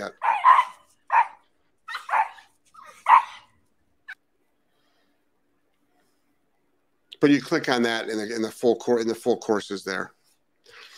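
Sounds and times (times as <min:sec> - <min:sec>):
speech: 0:00.0 - 0:00.2, 0:07.2 - 0:10.2
dog barking: 0:00.2 - 0:03.5.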